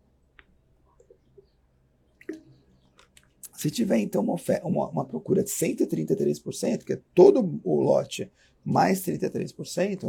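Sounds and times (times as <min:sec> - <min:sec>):
person sipping water: 0:02.2 - 0:03.6
speech: 0:03.6 - 0:10.0.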